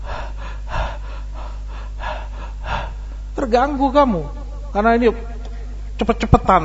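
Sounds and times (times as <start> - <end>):
man panting heavily, imitating someone out of breath after hurrying to the mosque: 0.0 - 3.4
low hum: 0.0 - 6.6
speech: 3.4 - 5.3, 6.0 - 6.6.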